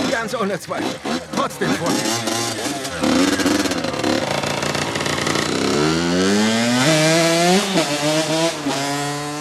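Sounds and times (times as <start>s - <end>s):
motorcycle engine idling roughly and revving through gear changes: 0.0s - 9.3s
speech: 0.2s - 3.8s, 7.8s - 8.9s.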